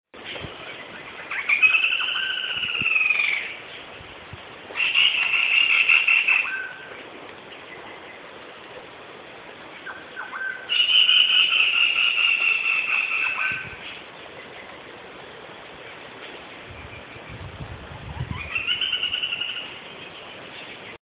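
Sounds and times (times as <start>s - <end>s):
black-rumped flameback woodpecker calling: 0.5s - 3.9s, 4.7s - 8.2s, 9.7s - 14.8s, 18.2s - 20.8s.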